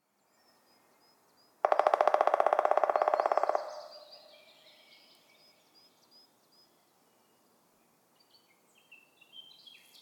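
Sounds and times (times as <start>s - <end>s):
black woodpecker drumming: 1.6s - 4.2s.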